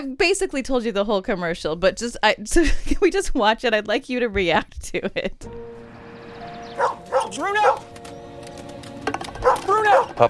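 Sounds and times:
speech: 0.0 - 5.8, 6.8 - 8.0, 9.4 - 10.2
dog barking in a TV commercial: 6.7 - 7.9, 9.4 - 10.2.

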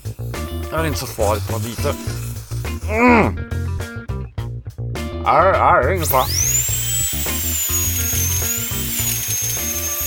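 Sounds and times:
dental drill whining as cavities are drilled in a dentist's chair: 0.0 - 3.0, 6.0 - 10.0
speech: 0.7 - 2.2, 2.9 - 3.8, 5.3 - 6.6.

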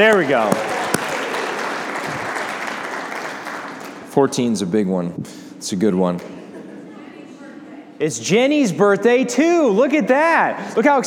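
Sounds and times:
speech: 0.0 - 0.7, 4.2 - 6.4, 8.0 - 11.0
audience clapping for a birthday: 0.0 - 4.2
single sharp clap: 0.1 - 2.4.

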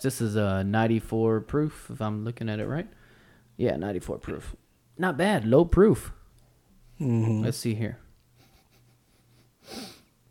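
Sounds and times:
speech: 0.0 - 3.0, 3.6 - 6.2, 7.0 - 8.0, 9.7 - 9.9
person sniffing bourbon in a glass: 8.4 - 10.1.

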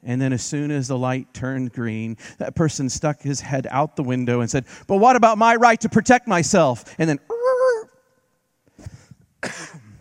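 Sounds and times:
speech: 0.0 - 7.3
person coughing in a car at a traffic light: 9.4 - 10.0.

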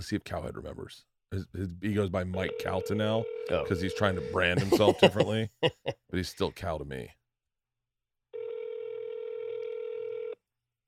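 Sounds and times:
speech: 0.0 - 7.2
telephone call ringing out unanswered: 2.5 - 4.3, 8.4 - 10.4
laughter: 4.2 - 6.0.

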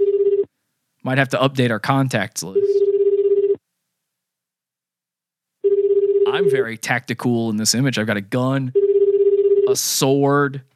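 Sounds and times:
phone ringback tone on unanswered outgoing call: 0.0 - 0.5, 2.6 - 3.6, 5.6 - 6.6, 8.8 - 9.8
speech: 1.0 - 2.8, 6.4 - 8.8, 9.7 - 10.7.

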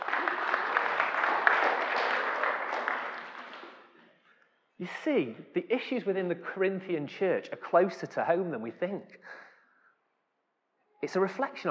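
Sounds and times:
audience applause: 0.0 - 4.0
speech: 4.8 - 9.4, 11.0 - 11.7.

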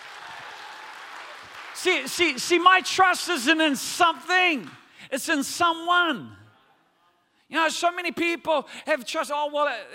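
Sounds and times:
crowd clapping in praise: 0.0 - 4.9
speech: 1.8 - 6.4, 7.5 - 9.9.

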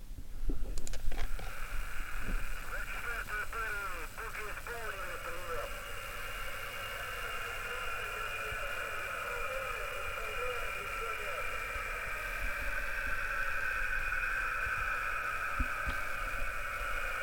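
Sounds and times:
steady whooshing radio jamming static: 0.9 - 17.2
faint garbled voice transmissions over radio: 1.2 - 13.6.

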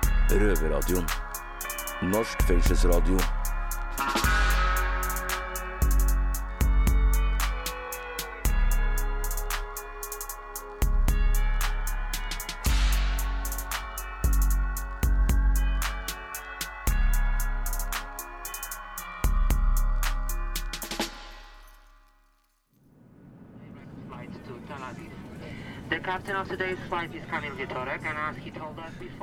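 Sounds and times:
upbeat music: 0.0 - 21.7
speech: 0.3 - 1.3, 2.0 - 3.4, 26.4 - 29.2.

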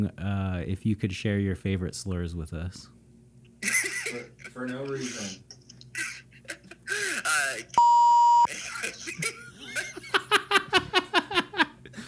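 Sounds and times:
speech: 0.0 - 3.0, 4.1 - 5.6
lively talk: 0.0 - 12.0
rhythmic laughter: 3.6 - 7.8, 8.5 - 12.0
censor beep: 7.8 - 8.5.

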